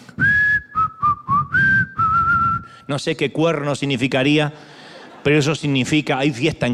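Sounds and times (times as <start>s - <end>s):
person whistling a tune: 0.1s - 2.9s
speech: 2.9s - 6.7s.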